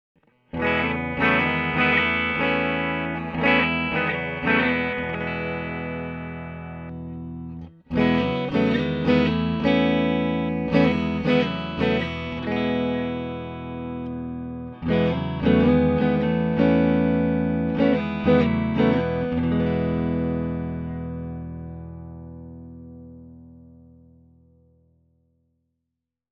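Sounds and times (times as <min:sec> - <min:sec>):
clean electric guitar strumming with tele style pickups: 0:00.2 - 0:24.6.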